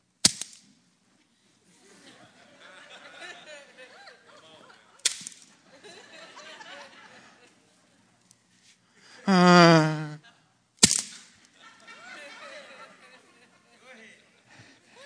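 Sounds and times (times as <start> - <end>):
arrows striking a hard floor: 0.2 - 0.7, 5.0 - 5.4, 10.8 - 11.3
laughter: 1.7 - 5.0, 5.6 - 7.9, 9.2 - 10.5, 11.5 - 15.0.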